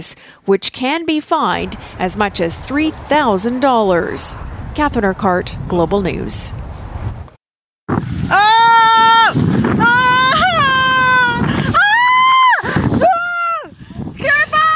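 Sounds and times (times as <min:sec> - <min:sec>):
speech: 0:00.0 - 0:06.6
rough blustery rumble like wind: 0:01.3 - 0:14.7
woman screaming in terror: 0:08.3 - 0:13.7.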